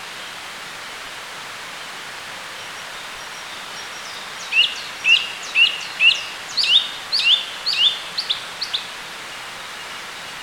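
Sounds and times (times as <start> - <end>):
song thrush singing: 2.8 - 10.4.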